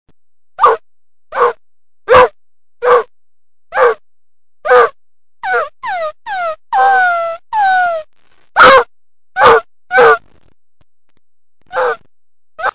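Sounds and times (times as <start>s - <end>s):
dog whimpering: 0.6s - 0.8s, 1.4s - 3.1s, 3.8s - 4.0s, 4.7s - 8.8s, 9.4s - 10.2s, 11.7s - 12.0s.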